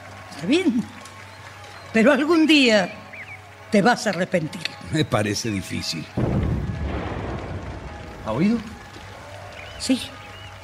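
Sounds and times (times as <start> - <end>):
speech: 0.4 - 1.0, 1.9 - 3.0, 3.7 - 6.4, 8.3 - 8.7, 9.8 - 10.2
distant gunshots: 6.1 - 10.5.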